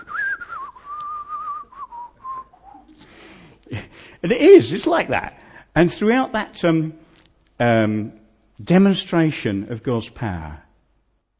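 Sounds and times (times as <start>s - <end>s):
person whistling a slow sliding melody in spaghetti Western style: 0.0s - 3.0s
speech: 4.2s - 7.0s, 7.6s - 10.6s.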